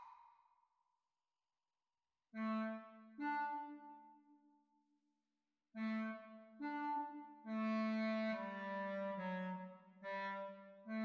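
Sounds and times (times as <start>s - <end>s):
clarinet duet practice recording: 2.3s - 4.1s, 5.8s - 11.0s.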